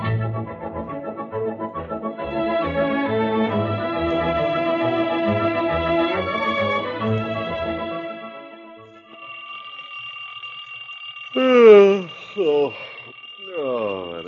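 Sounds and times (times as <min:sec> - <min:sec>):
alarm clock ringing with an electronic tone: 0:00.6 - 0:14.2
person making rising swooping vocal sounds: 0:11.4 - 0:12.7.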